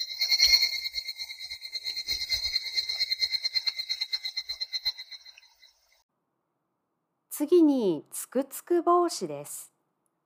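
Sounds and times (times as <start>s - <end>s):
higurashi evening cicada calling with a high ringing trill: 0.0s - 6.0s
speech: 7.4s - 9.7s.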